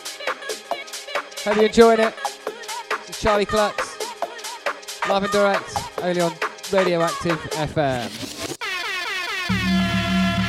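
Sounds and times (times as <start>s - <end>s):
speech: 1.4s - 2.3s, 3.1s - 3.8s, 5.0s - 8.4s
warbling air horn sound effect: 8.6s - 10.4s.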